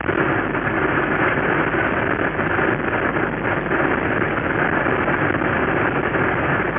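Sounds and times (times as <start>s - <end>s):
vehicle engine with overdrive pulling up a hill below 3,000 RPM: 0.0s - 6.7s.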